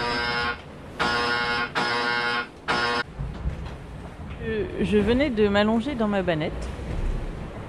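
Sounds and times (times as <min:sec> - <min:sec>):
electronic foil load alarm on a sailboat buzzing: 0:00.0 - 0:03.0
low rumbling noise: 0:00.0 - 0:07.6
speech: 0:04.8 - 0:07.0.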